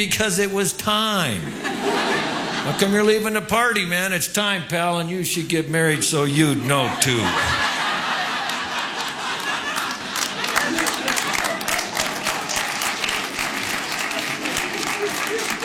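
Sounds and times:
speech: 0.0s - 7.6s
people chuckling: 1.4s - 3.1s, 5.9s - 15.6s
faint crowd murmurs: 5.9s - 15.6s
large audience clapping: 7.0s - 15.6s.

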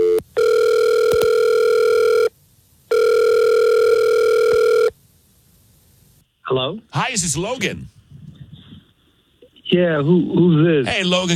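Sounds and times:
telephone dialing tones during an outgoing call: 0.0s - 2.3s, 2.9s - 4.9s
speech: 6.7s - 8.0s, 9.7s - 11.3s.

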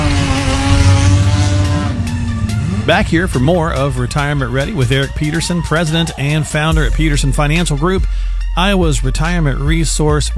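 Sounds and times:
race car engines revving: 0.0s - 8.1s
speech: 2.9s - 10.3s.

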